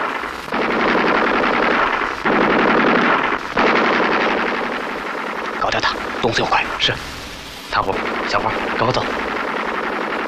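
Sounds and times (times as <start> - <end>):
enemy sentry machine gun firing in wartime: 0.0 - 7.3, 7.9 - 10.2
speech: 6.2 - 9.3.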